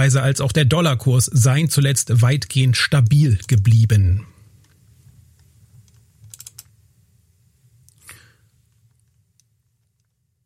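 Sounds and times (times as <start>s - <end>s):
speech: 0.0s - 4.3s
low steady hum: 0.0s - 10.4s
computer keyboard and mouse clicks: 5.8s - 6.7s.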